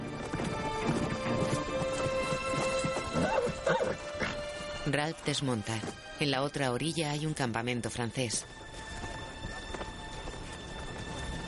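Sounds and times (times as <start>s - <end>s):
horses galloping at full pace: 0.0s - 4.8s, 8.5s - 11.4s
steady tonal backdrop: 0.0s - 11.4s
horse whinny: 3.0s - 4.4s
speech: 4.9s - 8.8s.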